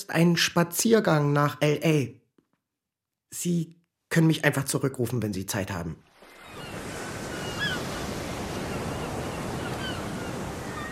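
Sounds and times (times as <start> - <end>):
speech: 0.1 - 2.2, 3.3 - 6.1
ocean waves washing against a pier at Santa Monica: 6.1 - 10.9.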